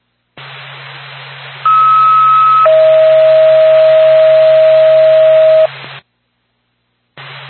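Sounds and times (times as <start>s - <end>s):
hissy band-limited ambulance dispatch radio channel: 0.4s - 2.8s, 5.0s - 6.0s, 7.2s - 7.4s
electronic phone-line tones through a dispatch radio channel: 1.7s - 5.7s.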